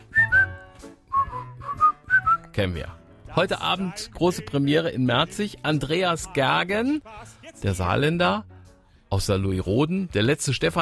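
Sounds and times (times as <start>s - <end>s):
person whistling a short bright tune: 0.0s - 2.5s
speech: 2.6s - 8.5s, 9.1s - 10.8s.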